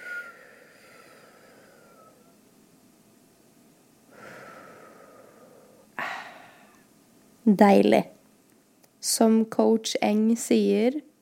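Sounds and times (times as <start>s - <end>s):
slow deep breathing during a breathing exercise: 0.0s - 2.4s, 4.1s - 6.9s
speech: 7.5s - 8.2s, 9.1s - 11.1s.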